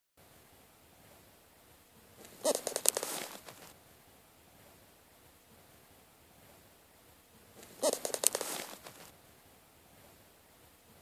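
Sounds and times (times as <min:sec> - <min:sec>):
bird wingbeats with quick papery flaps: 0:02.2 - 0:03.7, 0:07.6 - 0:09.1.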